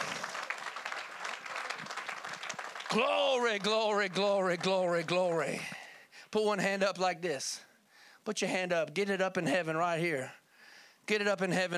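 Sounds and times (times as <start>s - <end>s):
church audience applauding during a sermon: 0.0s - 5.4s
speech: 2.9s - 10.4s, 11.1s - 11.7s.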